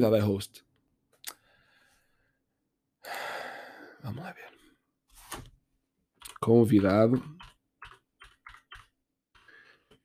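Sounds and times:
speech: 0.0s - 0.7s, 4.0s - 4.5s, 6.4s - 7.4s
gaming keyboard being typed on: 6.2s - 9.5s.

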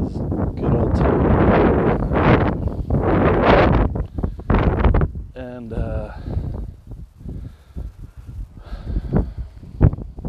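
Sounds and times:
loud gusty wind buffeting a microphone: 0.0s - 10.2s.

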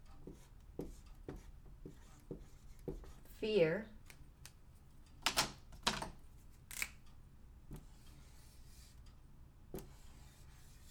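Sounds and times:
pen scratching while handwriting a word: 0.3s - 3.2s
speech: 3.4s - 4.0s.

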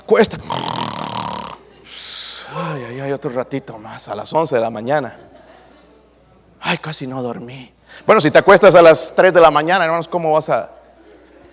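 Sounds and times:
speech: 0.1s - 0.8s, 3.0s - 5.4s, 6.6s - 10.8s
voice imitating a loud snore: 0.2s - 1.7s.

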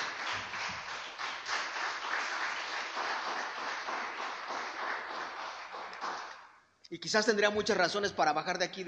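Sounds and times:
large crowd applauding: 0.0s - 6.5s
speech: 6.9s - 8.8s.

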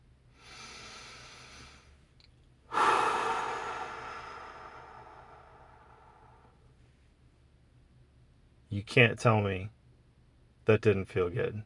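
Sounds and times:
deep breath in and out: 0.3s - 2.0s, 2.7s - 6.7s
speech: 8.8s - 9.8s, 10.7s - 11.6s.

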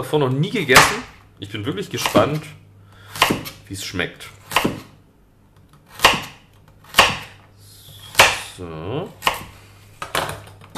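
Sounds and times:
speech: 0.0s - 2.6s, 3.7s - 4.4s, 8.6s - 9.3s
knife chopping carrots on cutting board: 0.7s - 1.2s, 2.0s - 2.5s, 3.1s - 3.6s, 4.5s - 5.0s, 5.9s - 7.4s, 8.0s - 8.5s, 9.2s - 9.6s.

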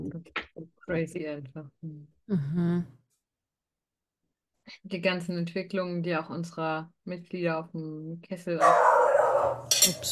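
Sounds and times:
speech: 0.2s - 3.0s, 4.7s - 8.9s, 9.5s - 10.1s
dog barking: 8.6s - 10.0s.

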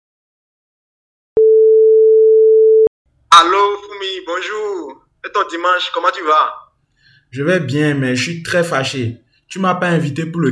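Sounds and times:
telephone tone while a call is being placed: 1.4s - 2.9s
speech: 3.3s - 6.6s, 7.3s - 10.5s.

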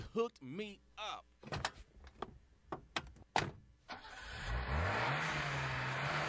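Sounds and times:
speech: 0.2s - 1.6s
newly bought car's engine starting up and revving: 4.0s - 6.2s.

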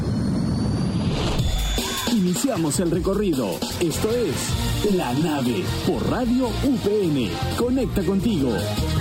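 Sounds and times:
engine roaring at takeoff with a whining high tone: 0.0s - 2.0s
speech: 2.3s - 8.9s.

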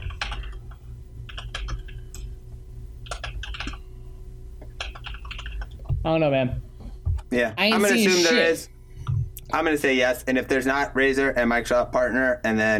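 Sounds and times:
rapid computer keyboard typing: 0.0s - 2.3s, 3.0s - 3.8s, 4.6s - 5.9s
low steady hum: 0.0s - 12.7s
speech: 6.0s - 6.7s, 7.3s - 8.7s, 9.5s - 12.7s.

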